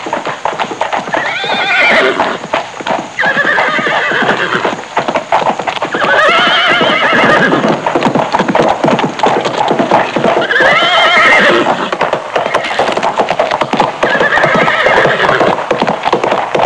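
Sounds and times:
farm horses trotting: 0.0 - 16.6.

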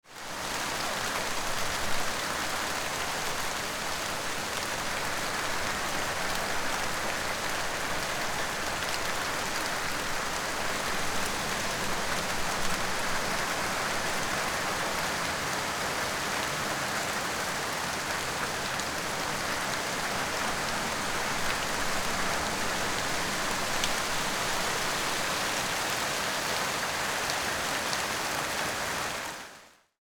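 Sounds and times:
tropical rain: 0.0 - 30.0.

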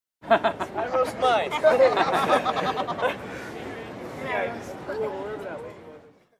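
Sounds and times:
man laughing in public: 0.3 - 3.2.

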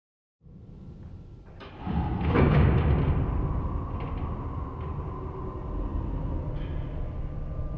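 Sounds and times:
heavy industrial steel door closing: 1.4 - 7.6.

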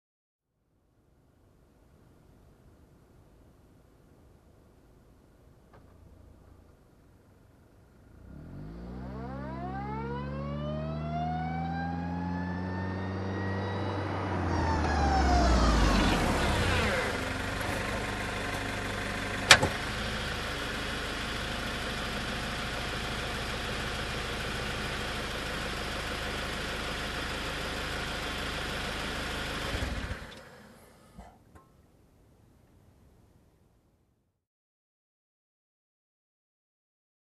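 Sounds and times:
car reversing and stopping nearby: 5.7 - 31.4.

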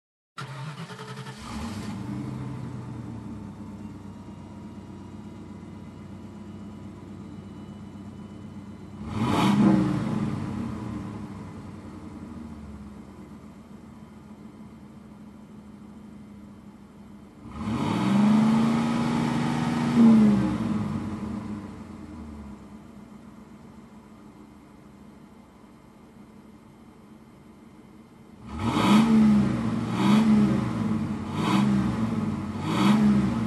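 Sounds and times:
car engine starting and revving: 0.4 - 3.9, 8.9 - 13.1, 17.4 - 22.8, 28.4 - 33.4.

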